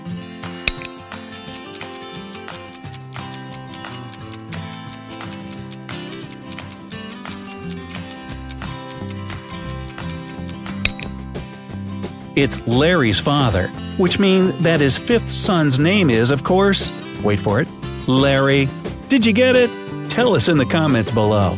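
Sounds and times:
countdown clock ticking for a quiz question: 0.7s - 11.3s
speech: 12.4s - 21.5s.

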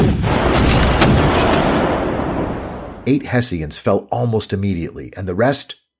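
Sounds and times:
rumbling artillery fire with heavy booms: 0.0s - 3.1s
speech: 3.1s - 5.9s.

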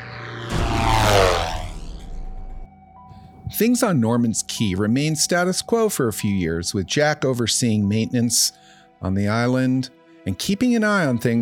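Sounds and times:
propeller plane engine roaring as it takes off: 0.0s - 2.6s
speech: 3.6s - 11.4s.

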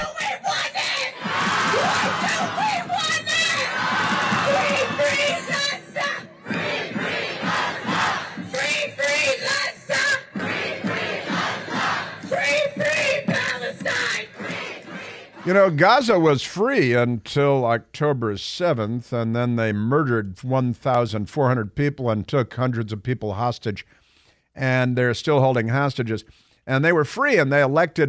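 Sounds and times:
large rally crowd shouting and screaming in Washington DC: 0.0s - 15.5s
speech: 15.5s - 24.0s, 24.6s - 28.0s.

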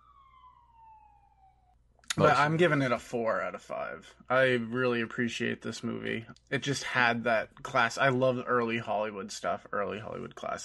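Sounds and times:
passing police car siren wailing: 0.0s - 2.4s
speech: 2.2s - 10.6s.

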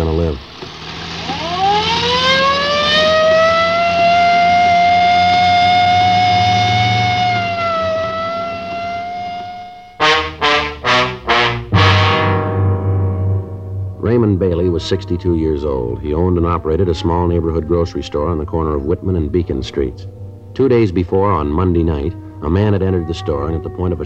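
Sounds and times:
low car engine rumble: 0.0s - 24.0s
speech: 0.2s - 0.6s, 14.4s - 24.0s
police car siren wailing while driving in the rain: 1.2s - 12.5s, 13.4s - 24.0s.

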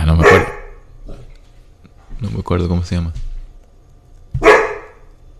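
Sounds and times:
single sharp dog bark: 0.2s - 0.9s, 4.4s - 5.1s
speech: 2.5s - 3.3s.

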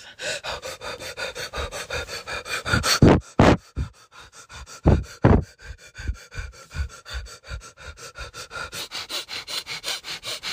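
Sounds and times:
rapid breath of fire panting: 0.0s - 10.5s.

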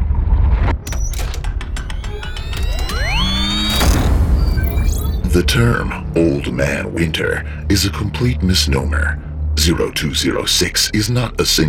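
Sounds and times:
low steady rumble: 0.0s - 11.1s
door swinging shut: 0.8s - 5.2s
rising creak: 0.8s - 5.3s
sharp mechanical clicks of a door latch catching: 0.9s - 4.8s
speech: 5.4s - 11.6s.

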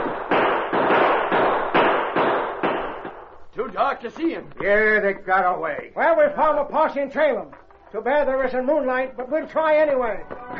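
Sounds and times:
gunshots: 0.0s - 3.4s
speech: 3.8s - 10.5s.

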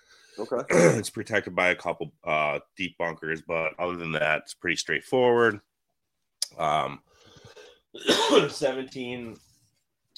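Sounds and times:
speech: 0.4s - 5.7s, 6.5s - 7.1s, 7.9s - 9.4s
man clearing his throat: 0.6s - 1.1s, 8.0s - 8.6s.

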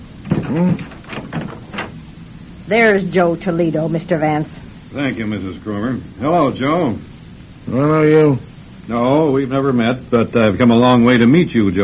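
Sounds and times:
door swinging open with hinge creak: 0.2s - 2.0s
speech: 0.5s - 0.9s, 2.7s - 11.8s.

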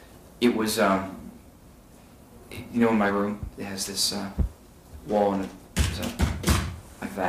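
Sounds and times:
speech: 0.4s - 1.2s, 2.5s - 6.2s
fist thumping on a wooden witness stand: 5.8s - 6.8s.

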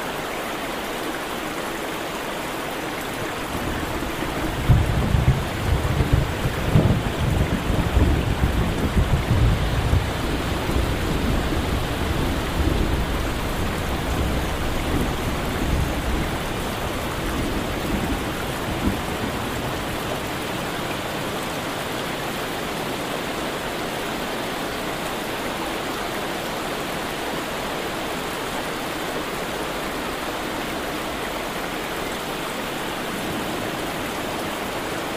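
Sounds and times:
steady dense rain: 0.0s - 35.1s
low rumbling roll of distant thunder: 3.3s - 22.5s.

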